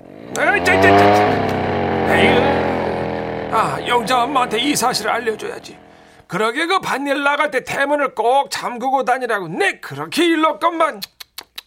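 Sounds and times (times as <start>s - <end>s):
motorcycle engine revving and accelerating away: 0.0s - 6.2s
speech: 4.0s - 11.1s.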